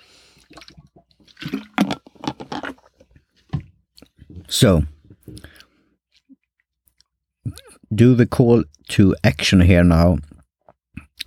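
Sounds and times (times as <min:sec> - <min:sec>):
person sipping a drink with wet slurps and gulps: 0:00.0 - 0:03.2, 0:05.3 - 0:07.8
speech: 0:04.5 - 0:04.9, 0:08.0 - 0:10.3.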